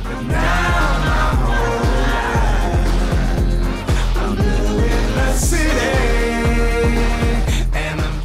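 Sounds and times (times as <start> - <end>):
deep bass: 0.0 - 8.2
gritty processed autotuned choir vocals sample: 0.0 - 8.2
thumping kick drum: 0.1 - 8.2.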